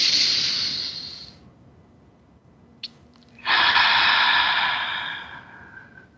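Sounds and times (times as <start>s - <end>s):
deep breaths in a guided breathing exercise: 0.0s - 1.4s, 3.4s - 6.1s.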